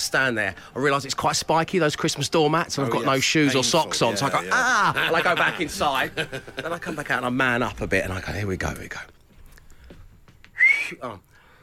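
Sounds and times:
speech: 0.0 - 9.2, 10.9 - 11.3
laughter: 3.7 - 7.3
person exclaiming: 4.2 - 5.0
loud piercing fingers-in-mouth whistle: 10.5 - 11.0.

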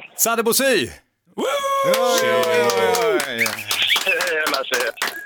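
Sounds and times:
speech: 0.2 - 3.7, 4.5 - 5.2
people shouting: 1.4 - 3.4
small group cheering and whooping down a phone call: 1.4 - 4.4
people clapping: 1.8 - 5.2.

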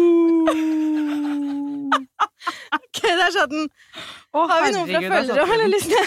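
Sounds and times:
person imitating a wolf howl: 0.0 - 2.0
speech: 3.1 - 6.0.

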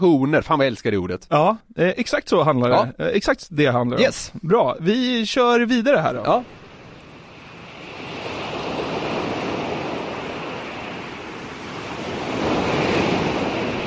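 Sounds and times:
speech: 0.0 - 6.6
waves breaking and washing onto a sandy shore: 6.3 - 13.8
wind hiss: 6.4 - 13.8.

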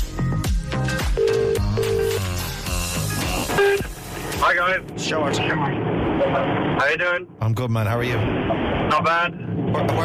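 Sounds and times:
steady music: 0.0 - 5.5
telephone ringback tone in short paired buzzing bursts: 1.2 - 2.2
speech: 4.5 - 10.0.

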